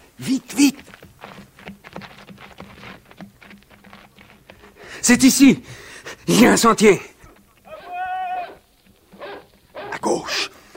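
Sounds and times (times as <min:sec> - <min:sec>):
speech: 0:00.2 - 0:01.0, 0:05.1 - 0:07.1
dog howling: 0:07.7 - 0:08.6, 0:09.2 - 0:10.0.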